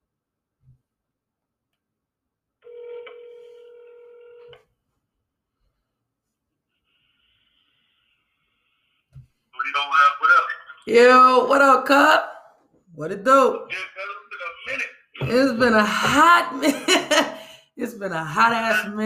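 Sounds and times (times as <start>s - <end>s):
electronic phone tone of a telephone call ringing through: 2.6s - 4.6s
speech: 10.8s - 12.3s, 13.0s - 14.1s, 15.2s - 17.2s, 17.8s - 19.0s
laughter: 15.7s - 17.4s.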